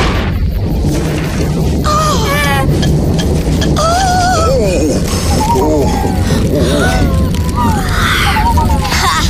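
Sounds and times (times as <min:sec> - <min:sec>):
thunder rumbling: 0:00.0 - 0:09.2
high warbling tones: 0:00.6 - 0:09.2
vocal-like squeaks: 0:01.9 - 0:09.2.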